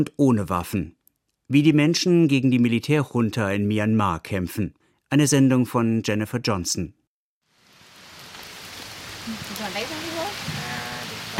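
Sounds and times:
speech: 0:00.0 - 0:07.0, 0:09.3 - 0:10.1
light rain pattering: 0:07.5 - 0:11.3.

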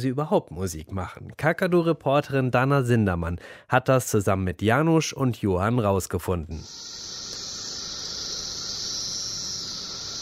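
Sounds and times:
speech: 0:00.0 - 0:07.1
thousands of periodical cicadas singing together on a single tree: 0:06.6 - 0:10.2.

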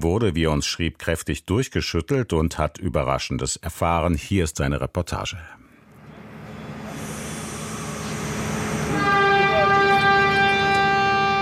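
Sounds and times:
speech: 0:00.0 - 0:05.6
night train horn blaring at departure: 0:08.0 - 0:11.4.

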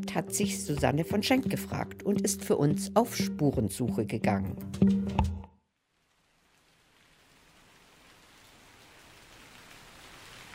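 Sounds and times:
speech: 0:00.0 - 0:04.9
steady rain falling: 0:05.8 - 0:10.5.

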